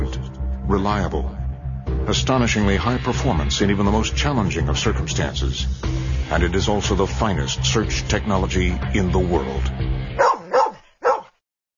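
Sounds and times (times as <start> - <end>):
speech: 0.7 - 10.3
search dog barking: 10.2 - 11.4.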